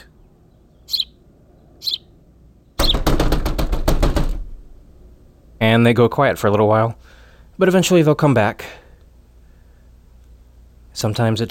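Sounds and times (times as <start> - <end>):
short high chirps: 0.9 - 1.2, 1.8 - 2.1
rapid banging on a metal air conditioner unit: 2.8 - 4.8
speech: 5.6 - 8.8, 11.0 - 11.4.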